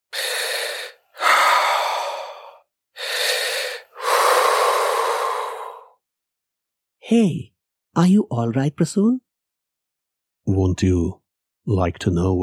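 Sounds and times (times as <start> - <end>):
person gasping and struggling for breath in terror: 0.1 - 6.0
speech: 7.1 - 9.2, 10.4 - 12.4.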